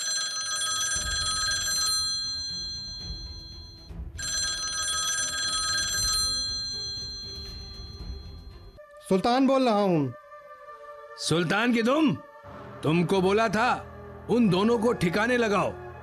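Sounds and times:
telephone ringing with a bright electronic trill: 0:00.0 - 0:08.8
speech: 0:09.1 - 0:10.2, 0:11.2 - 0:15.8.

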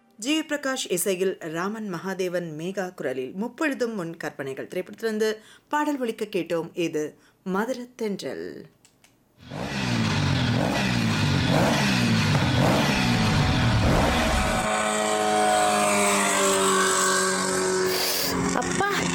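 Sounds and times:
speech: 0:00.2 - 0:08.8, 0:09.4 - 0:09.8
vehicle speeding along at high speed with engine roar: 0:09.4 - 0:19.1.

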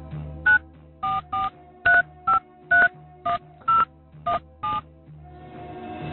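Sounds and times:
phone keypad dialing tones: 0:00.5 - 0:04.8.

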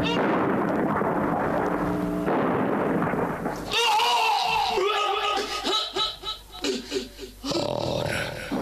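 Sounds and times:
bomb explosion blasts on an ammunition store: 0:00.0 - 0:04.2
laughter: 0:04.6 - 0:07.4.

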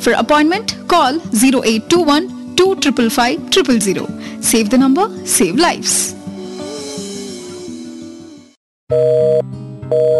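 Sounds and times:
speech: 0:00.0 - 0:06.2, 0:08.9 - 0:09.2
music: 0:00.0 - 0:08.6, 0:09.4 - 0:10.1
telephone busy tone for an engaged number: 0:08.9 - 0:10.1.

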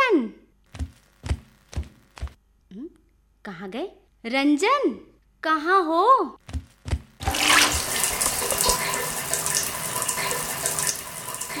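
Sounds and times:
speech: 0:03.5 - 0:06.4
water running from a tap left open: 0:07.2 - 0:11.5.

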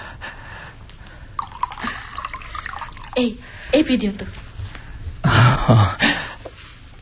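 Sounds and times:
water being poured for drinking: 0:01.4 - 0:03.5
speech: 0:03.2 - 0:04.4, 0:05.7 - 0:06.2.

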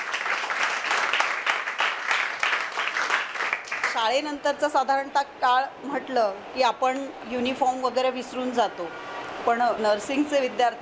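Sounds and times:
audience applause for nursing college students in uniform: 0:00.0 - 0:04.0
speech: 0:04.0 - 0:10.7.

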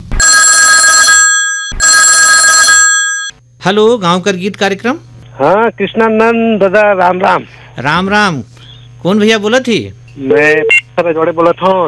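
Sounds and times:
telephone ringing with a trilling electronic bell for an incoming call: 0:00.2 - 0:03.4
speech: 0:03.6 - 0:11.8.

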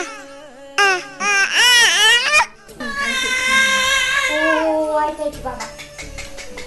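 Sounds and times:
nine-month-old infant crying: 0:00.0 - 0:04.8.

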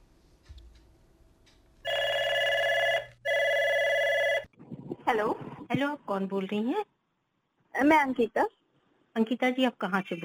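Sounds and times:
telephone ringing for incoming call to a phone-in programme: 0:01.8 - 0:04.5
speech: 0:05.1 - 0:06.9, 0:07.8 - 0:08.6, 0:09.2 - 0:10.2.

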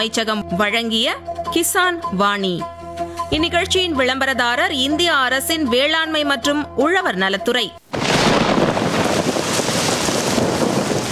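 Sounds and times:
speech: 0:00.0 - 0:07.8
gusting wind: 0:07.8 - 0:11.1
heavy rain in a rainstorm: 0:07.8 - 0:11.1.

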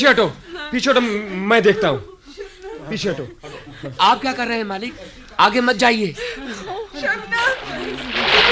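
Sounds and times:
speech: 0:00.0 - 0:02.1, 0:02.9 - 0:08.5
laughter: 0:00.7 - 0:08.5
churning slosh of lake water: 0:07.1 - 0:08.5
man jumping into lake water by a houseboat: 0:07.3 - 0:08.5.

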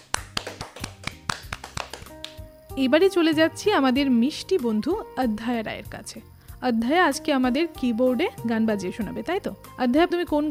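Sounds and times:
scattered applause from a small group for a child performer: 0:00.0 - 0:02.4
speech: 0:02.8 - 0:10.5.

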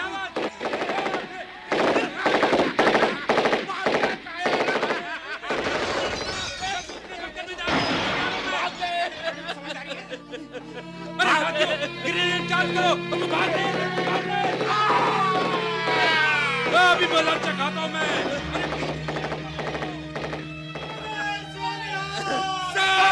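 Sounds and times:
people shouting: 0:00.0 - 0:06.1, 0:12.4 - 0:23.1
bursts of rapid automatic gunfire in a dramatized battle: 0:00.4 - 0:05.8, 0:18.6 - 0:20.9
laughter: 0:00.8 - 0:06.2, 0:08.4 - 0:20.0, 0:20.9 - 0:23.1.

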